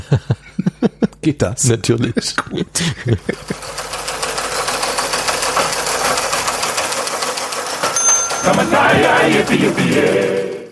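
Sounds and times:
laughter: 0:00.0 - 0:01.4, 0:02.0 - 0:03.7, 0:08.4 - 0:10.5
speech: 0:00.1 - 0:00.4, 0:01.2 - 0:03.8, 0:08.4 - 0:10.5
printer running with mechanical whir and rhythmic ticking: 0:03.4 - 0:10.6.

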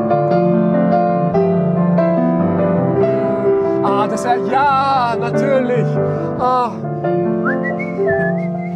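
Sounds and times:
steady tonal background: 0:00.2 - 0:06.2
person whistling a 1980s rock ballad melody: 0:07.3 - 0:08.7.

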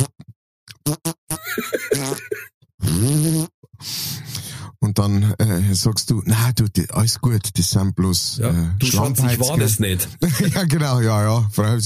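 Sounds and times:
person imitating the wet bubbling fart of a trout in a pond: 0:00.0 - 0:03.7
speech: 0:00.9 - 0:04.0, 0:05.0 - 0:11.8
laughter: 0:01.4 - 0:02.5, 0:08.8 - 0:10.8.

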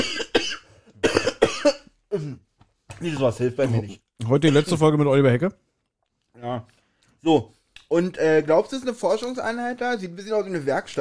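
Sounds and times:
harsh hacking coughs: 0:00.0 - 0:03.4, 0:04.4 - 0:04.8
speech: 0:01.6 - 0:05.6, 0:06.4 - 0:11.0.

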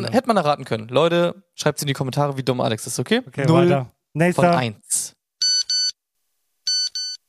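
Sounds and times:
speech: 0:00.0 - 0:05.2
Nokia mobile phone standard text-message alert: 0:05.4 - 0:06.0, 0:06.7 - 0:07.2.

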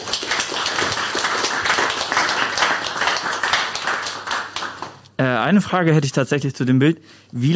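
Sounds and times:
crowd clapping: 0:00.0 - 0:05.2
speech: 0:05.2 - 0:07.5.

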